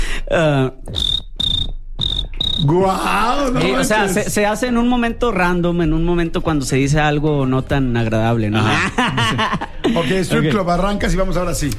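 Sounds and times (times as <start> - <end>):
speech: 0.3 - 1.0, 2.7 - 11.7
short vocal squeal: 0.8 - 3.4
person imitating cricket chirping: 0.9 - 2.7
laughter: 8.6 - 10.6.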